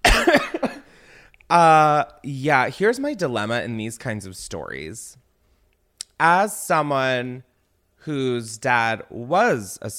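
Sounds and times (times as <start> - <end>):
person coughing up mucus: 0.0 - 0.9
speech: 1.5 - 5.2, 6.2 - 9.9.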